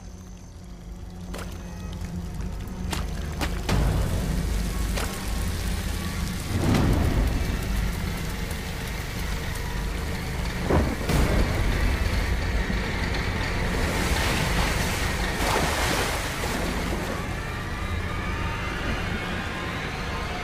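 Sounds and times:
rushing flash flood water roaring: 0:00.6 - 0:20.4
steady heavy rain pouring down: 0:01.6 - 0:20.4
low rumbles of thunder: 0:03.7 - 0:18.0.

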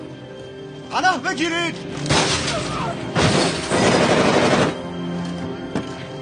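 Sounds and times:
speech: 0:00.9 - 0:02.6
window glass being smashed and shattering: 0:02.1 - 0:04.7.

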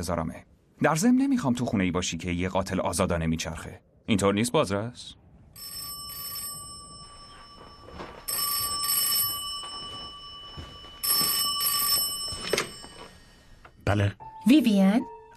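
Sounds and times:
speech: 0:00.0 - 0:05.8, 0:13.9 - 0:15.3
old-style telephone bell ringing: 0:05.6 - 0:13.9.

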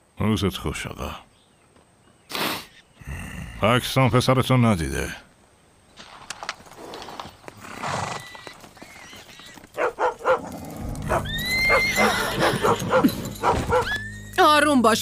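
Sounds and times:
speech: 0:00.2 - 0:01.3, 0:03.6 - 0:05.2, 0:14.8 - 0:15.0
horse hooves clopping: 0:06.0 - 0:14.6
horse whinnying in a farmyard: 0:06.8 - 0:14.3
dog barking in a farmyard: 0:09.8 - 0:14.0.

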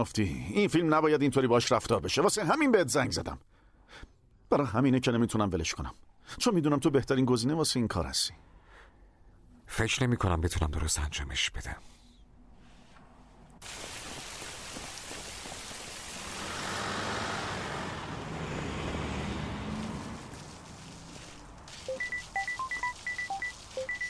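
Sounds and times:
speech: 0:00.0 - 0:08.5, 0:09.7 - 0:12.0
bus engine rumbling and hissing in street traffic: 0:16.2 - 0:21.9
short high chirping beeps: 0:21.8 - 0:24.0.

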